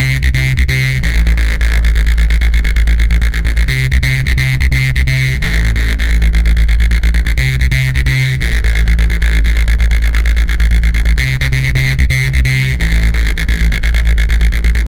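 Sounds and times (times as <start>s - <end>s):
aggressive neuro bass: 0.0s - 14.9s.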